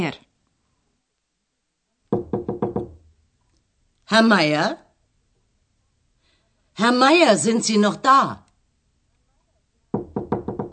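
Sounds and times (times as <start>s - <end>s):
speech: 0.0s - 0.2s, 4.1s - 4.8s, 6.8s - 8.4s
knocking on a room door: 2.1s - 3.1s, 9.9s - 10.7s.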